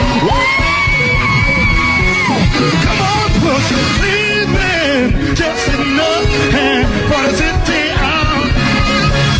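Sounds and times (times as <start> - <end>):
rising whoop: 0.0 - 2.6
crowd of many voices screaming and cheering: 0.0 - 9.3.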